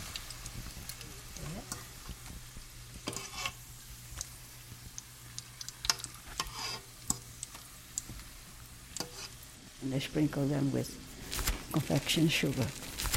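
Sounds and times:
farfalle dolci pastries frying and sizzling in hot oil: 0:00.0 - 0:13.1
speech: 0:09.9 - 0:11.0, 0:11.7 - 0:12.9.

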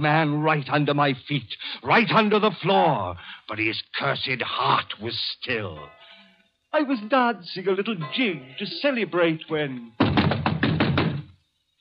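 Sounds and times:
speech: 0:00.0 - 0:06.0, 0:06.7 - 0:10.4
police knocking firmly on a door: 0:10.0 - 0:11.3.

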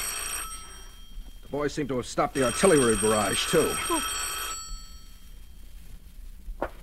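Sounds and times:
telephone bell ringing: 0:00.0 - 0:01.6, 0:02.4 - 0:05.6
low hum: 0:00.0 - 0:06.8
speech: 0:01.5 - 0:04.3.

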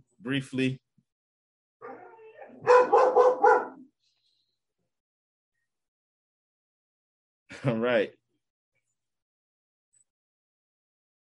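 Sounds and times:
speech: 0:00.2 - 0:00.8, 0:07.6 - 0:08.2
dog whining: 0:01.8 - 0:03.8.

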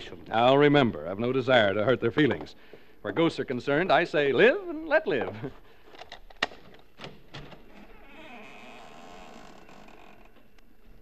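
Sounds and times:
speech: 0:00.3 - 0:05.6
front door opening with squeaking hinge: 0:07.0 - 0:11.0.

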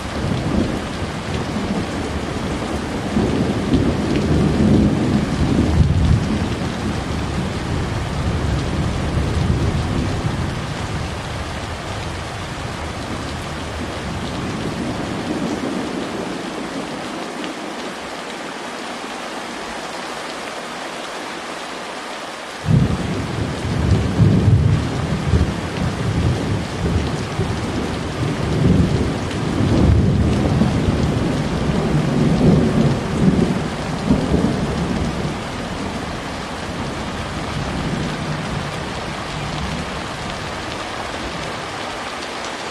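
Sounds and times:
deep thunder rolls rumbling: 0:00.0 - 0:17.0, 0:22.6 - 0:41.6
steady rain pattering in a rainstorm: 0:00.0 - 0:42.6.

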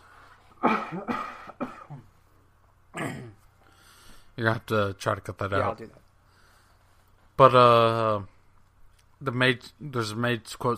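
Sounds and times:
person clearing something caught in the throat: 0:00.6 - 0:02.2, 0:02.9 - 0:03.4
speech: 0:00.9 - 0:01.3, 0:04.4 - 0:06.0, 0:07.4 - 0:08.3, 0:09.2 - 0:10.7.

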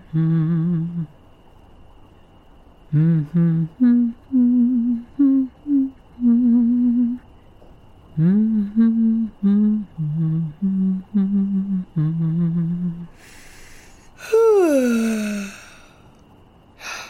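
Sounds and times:
person humming a nighttime song: 0:00.0 - 0:01.2, 0:02.9 - 0:07.3, 0:08.1 - 0:16.0, 0:16.8 - 0:17.0
breathy inhale: 0:13.1 - 0:16.1, 0:16.8 - 0:17.0
child's long yawn: 0:14.2 - 0:16.0.

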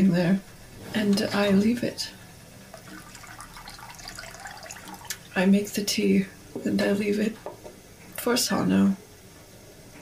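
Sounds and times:
speech: 0:00.1 - 0:02.2, 0:05.4 - 0:07.5, 0:08.2 - 0:09.0
water running from a tap for tea: 0:02.7 - 0:05.8.

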